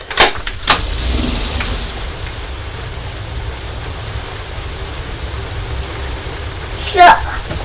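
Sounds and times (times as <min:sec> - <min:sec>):
rain heard through an open door: 0:00.0 - 0:07.6
bump: 0:00.1 - 0:03.4.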